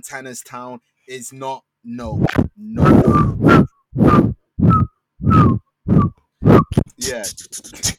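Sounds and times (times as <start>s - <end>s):
speech: 0.0s - 4.3s, 7.1s - 7.9s
breathy whistle melody in a grime beat: 2.8s - 6.8s.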